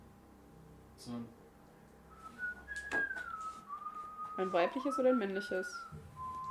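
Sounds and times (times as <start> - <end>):
speech: 1.0 - 1.4, 4.4 - 6.0
person whistling a tune upstairs: 2.1 - 6.4.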